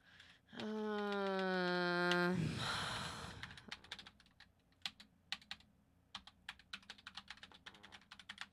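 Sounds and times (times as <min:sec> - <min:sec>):
person groaning and sighing: 0:00.5 - 0:03.8
typing on a sensitive gaming computer keyboard: 0:00.6 - 0:02.3, 0:03.4 - 0:08.5.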